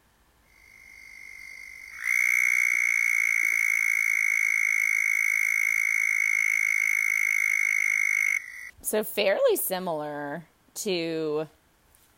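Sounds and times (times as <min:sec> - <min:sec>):
southern toad giving a long high-pitched trill: 0:00.7 - 0:08.8
speech: 0:08.8 - 0:11.6.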